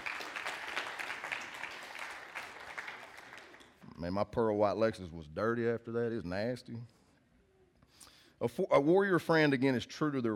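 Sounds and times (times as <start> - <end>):
audience applause of many hands clapping: 0.0 - 3.8
speech: 4.0 - 7.0, 8.4 - 10.3.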